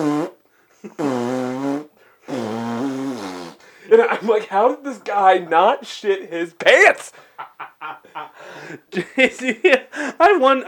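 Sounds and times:
voice imitating flatulence with the mouth: 0.0 - 3.7
speech: 0.8 - 1.2, 3.9 - 7.3, 8.2 - 10.6
laughter: 3.9 - 5.0, 7.1 - 10.2.

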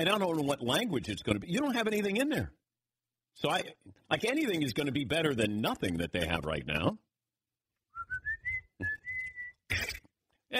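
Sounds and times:
speech: 0.0 - 2.6, 3.4 - 7.1
person whistling at a baseball game: 7.9 - 9.6.

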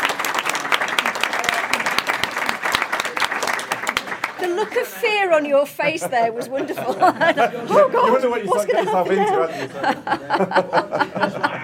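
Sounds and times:
audience applauding a spot prize winner: 0.0 - 5.2
speech: 4.4 - 11.6
laughter: 5.8 - 11.6.

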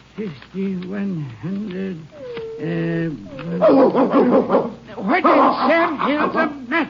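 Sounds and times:
speech: 0.2 - 6.8
dog growling nervously at night in a home in Texas: 2.0 - 6.2.

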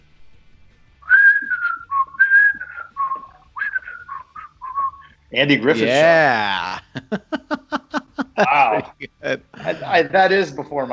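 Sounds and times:
whistled jaunty TV show theme tune: 1.0 - 5.2
speech: 5.3 - 7.4, 8.4 - 10.9
laughter: 5.8 - 10.2.

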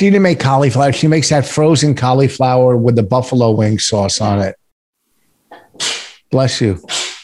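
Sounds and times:
speech: 0.0 - 4.6, 5.8 - 7.0
person sneezing: 5.5 - 7.2.

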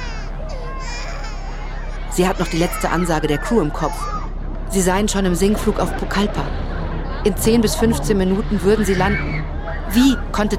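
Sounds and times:
panicked passengers shrieking in an aircraft cabin during descent: 0.0 - 4.3, 5.6 - 10.5
children wailing in an aircraft cabin: 0.0 - 4.4, 6.8 - 10.4
speech: 2.2 - 10.5.

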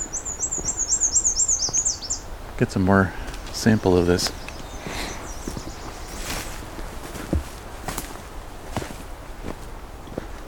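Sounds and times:
black-and-white bird singing loudly on a June afternoon: 0.0 - 2.3, 3.3 - 6.4
speech: 2.6 - 4.4.

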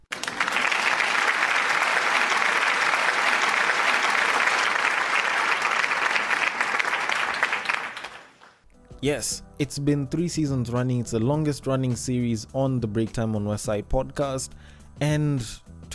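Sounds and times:
round of applause from a sizable crowd: 0.0 - 8.6
speech: 9.0 - 15.7.

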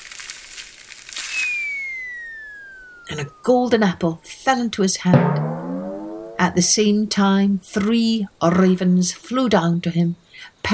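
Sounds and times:
leaves and twigs rustling in tree branches: 0.0 - 5.0
thin whistling tone sliding downward in pitch: 0.1 - 6.9
speech: 3.1 - 5.6, 6.4 - 10.7.

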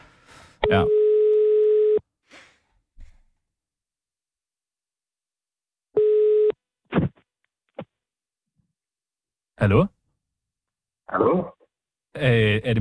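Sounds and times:
telephone ringback tone while placing a call: 0.6 - 2.0, 6.0 - 6.6
speech: 0.7 - 1.0, 9.6 - 10.0, 11.1 - 11.6, 12.2 - 12.7.

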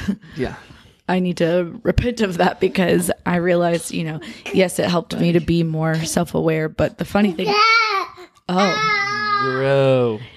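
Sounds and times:
speech: 0.4 - 7.8, 8.5 - 10.3
infant boy babbling: 7.2 - 9.9.

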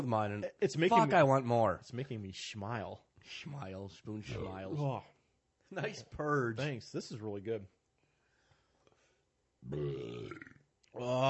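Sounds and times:
speech: 0.0 - 7.8, 9.6 - 11.2
throaty voiced sound: 4.2 - 5.0, 9.6 - 11.2
loud deep burp from drinking a hoppy beer: 9.6 - 11.2.

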